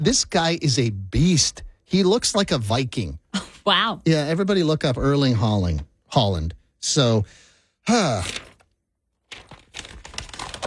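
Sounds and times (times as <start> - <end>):
speech: 0.0 - 8.5
paper sheet crumpling and ripping: 8.0 - 10.6.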